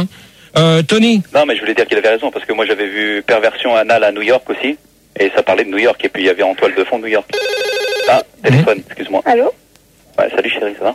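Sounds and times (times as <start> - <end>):
speech: 0.0 - 9.6, 10.2 - 10.9
telephone ringing: 7.3 - 8.3.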